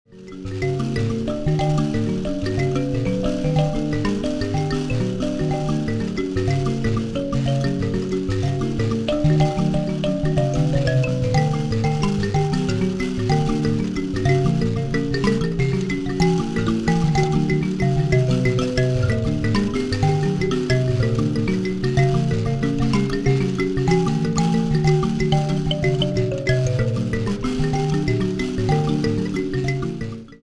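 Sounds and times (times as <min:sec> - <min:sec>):
mbira: 0:00.1 - 0:30.4.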